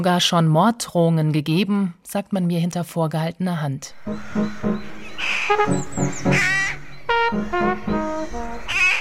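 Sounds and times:
speech: 0:00.0 - 0:08.4
rooks cawing harshly in Laubheim: 0:04.0 - 0:08.9.

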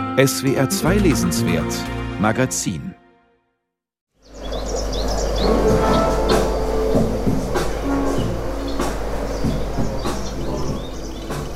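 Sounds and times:
speech: 0:00.2 - 0:03.0
bright bird chirps and twittering: 0:04.2 - 0:11.5
steady electronic beat: 0:05.5 - 0:11.5.

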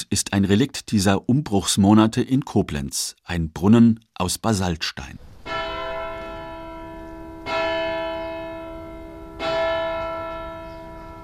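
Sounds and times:
speech: 0:00.1 - 0:05.3
church bells ringing: 0:05.4 - 0:11.2.

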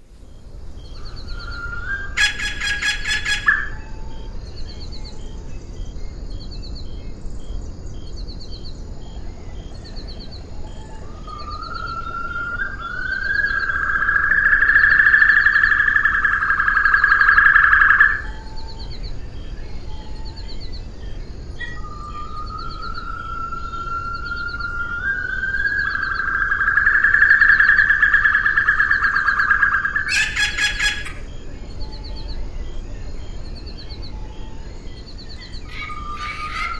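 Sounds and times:
steady outdoor hiss on Assumption: 0:00.0 - 0:36.7
soft chirps of Assumption white-throated rail: 0:00.2 - 0:36.7
Assumption white-throated rail whistled call: 0:01.0 - 0:04.3, 0:10.7 - 0:19.0, 0:21.6 - 0:32.4, 0:35.2 - 0:36.7.

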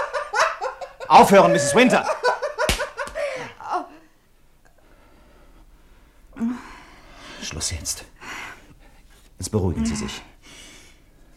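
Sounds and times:
laughter: 0:00.0 - 0:03.9
speech: 0:01.1 - 0:02.2, 0:09.5 - 0:10.3
slap across the face: 0:02.6 - 0:03.2.

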